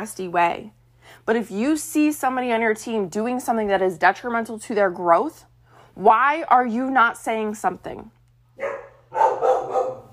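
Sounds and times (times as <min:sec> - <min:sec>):
speech: 0:00.0 - 0:08.7
faint steady hum: 0:00.0 - 0:10.1
dog barking: 0:08.6 - 0:10.1.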